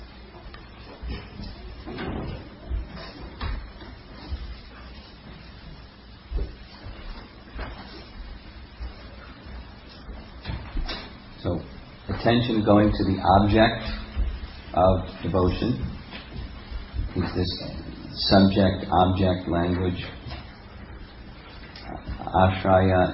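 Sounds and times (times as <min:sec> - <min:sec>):
door being shut: 0:01.8 - 0:03.7
speech: 0:11.5 - 0:14.0, 0:14.8 - 0:15.9, 0:17.2 - 0:20.2, 0:22.4 - 0:23.1.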